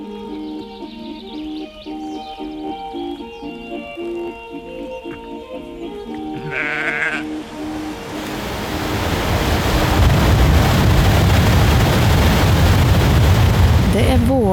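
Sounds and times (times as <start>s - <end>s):
sheep bleating: 6.3s - 7.4s
large waterfall roaring: 7.4s - 14.5s.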